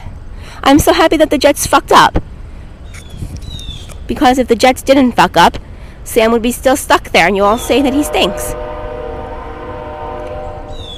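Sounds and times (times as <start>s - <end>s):
speech: 0.6s - 2.3s, 4.1s - 8.6s
train passing near a house: 6.0s - 10.9s.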